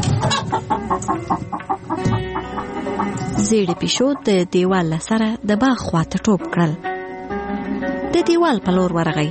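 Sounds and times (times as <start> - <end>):
hen clucking: 0.0 - 5.0
speech: 3.5 - 6.9, 8.1 - 9.2.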